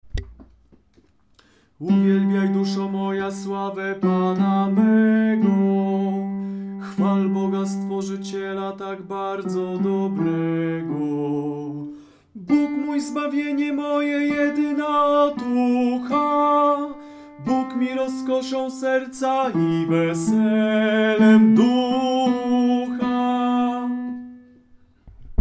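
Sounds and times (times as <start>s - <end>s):
tenor singing: 1.8s - 24.5s.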